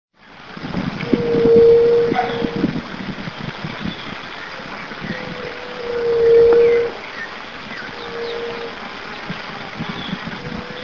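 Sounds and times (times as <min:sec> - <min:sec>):
Leptotila rufaxilla Juriti gemedeira calling: 0:01.0 - 0:02.8, 0:03.8 - 0:08.8.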